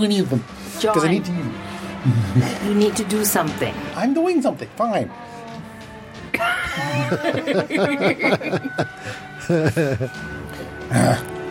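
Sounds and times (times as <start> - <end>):
speech: 0.0 - 5.4, 6.4 - 11.3
few people chuckling and laughing: 1.9 - 3.1, 6.3 - 10.3
short throaty burp: 10.8 - 11.4.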